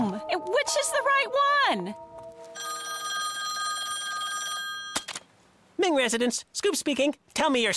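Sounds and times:
speech: 0.4 - 2.1, 5.8 - 7.7
telephone ringing with a bright trilling tone: 2.3 - 5.1.

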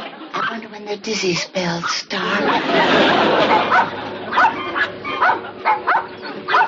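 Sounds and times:
laughter: 0.0 - 0.4, 2.2 - 6.5
speech: 0.6 - 5.8
dog barking in short sharp yaps: 3.3 - 6.6.

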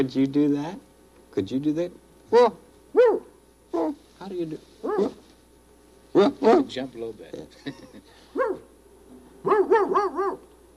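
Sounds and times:
speech: 0.0 - 5.2, 6.1 - 8.6, 9.4 - 10.5
dog giving yappy barks: 2.3 - 4.0, 4.8 - 5.2, 6.1 - 6.8, 8.3 - 8.7, 9.4 - 10.4
laughter: 7.5 - 8.3.

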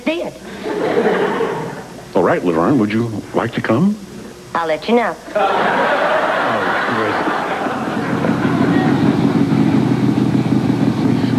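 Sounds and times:
speech: 0.1 - 1.2, 2.2 - 6.0
laughter: 0.5 - 1.9, 5.3 - 9.4
loud motorcycle engine roaring past: 6.5 - 11.3.

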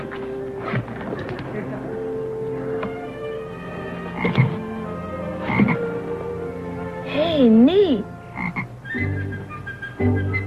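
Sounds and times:
steady drone of croaking: 0.6 - 6.9, 8.3 - 10.3
toad croaking: 4.1 - 4.7, 5.3 - 6.0, 8.3 - 8.7.

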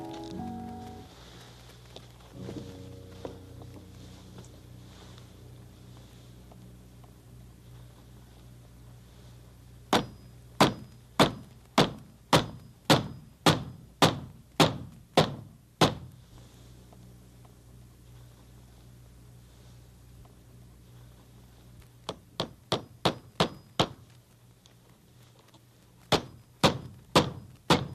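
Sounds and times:
hammer driving nails to put up a sign: 9.9 - 16.1, 22.1 - 24.0, 26.1 - 27.9.

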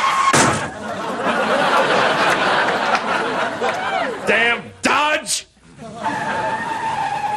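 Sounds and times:
laughter: 0.6 - 4.3, 5.7 - 7.3
car tires skidding: 6.1 - 7.3.

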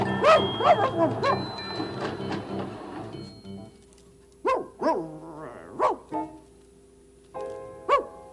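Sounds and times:
dog playing beneath something barking and yipping: 0.2 - 1.5, 4.4 - 6.1, 7.9 - 8.1.

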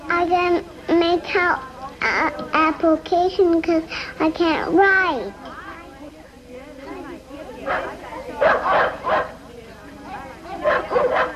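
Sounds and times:
low murmur: 0.0 - 11.3
speech: 0.2 - 5.5
dog barking and yipping: 7.7 - 9.3, 10.6 - 11.3.

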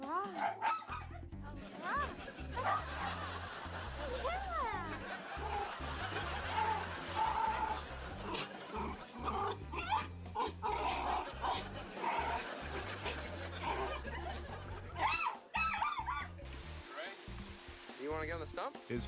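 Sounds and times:
speech: 0.2 - 0.8, 18.3 - 19.0
dog whining, yipping and snuffling excitedly: 0.3 - 1.2, 9.7 - 10.5, 15.0 - 16.3
laughter: 0.9 - 16.3.

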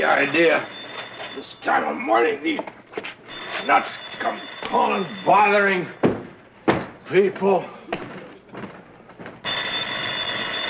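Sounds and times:
speech: 0.0 - 0.8, 1.4 - 2.8, 3.6 - 6.0, 7.1 - 7.8
old-style telephone bell ringing: 0.0 - 2.5, 3.2 - 6.0, 9.4 - 10.6.

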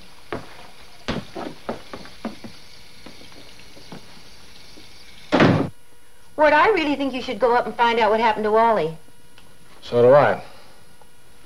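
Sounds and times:
door being pushed shut: 5.3 - 5.7
speech: 6.4 - 9.0, 9.8 - 10.5.

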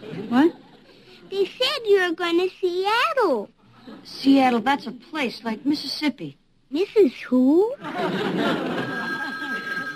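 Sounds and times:
speech: 1.4 - 8.9
laughter: 7.8 - 9.9
telephone bell ringing: 8.4 - 9.9.

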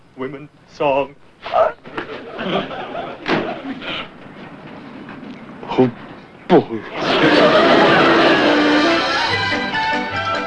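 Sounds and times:
speech: 0.2 - 3.0, 5.8 - 7.7
laughter: 1.9 - 4.1, 6.8 - 9.4
door slamming shut with a heavy thud: 3.2 - 3.6
shuffling noise: 4.2 - 6.4.

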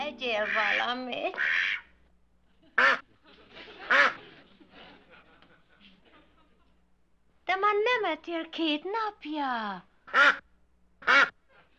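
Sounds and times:
speech: 0.1 - 1.7, 8.0 - 10.4
duck quacking: 0.4 - 1.9, 2.8 - 3.0, 3.9 - 4.2, 10.1 - 10.4, 11.0 - 11.4
laughter: 2.4 - 6.8.

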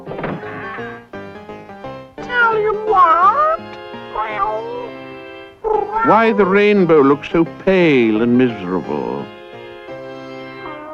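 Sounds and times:
sustained musical tone: 0.8 - 10.8
cat meowing in long wavering calls: 2.2 - 5.0, 5.6 - 6.8, 10.6 - 10.9
speech: 6.0 - 9.4.

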